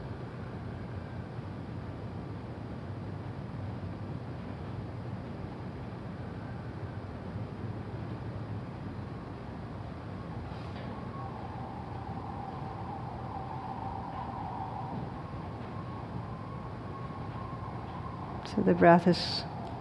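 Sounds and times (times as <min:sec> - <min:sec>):
low rumble: 0:00.0 - 0:19.7
emergency vehicle siren wailing outside: 0:09.2 - 0:19.7
speech: 0:18.6 - 0:19.5.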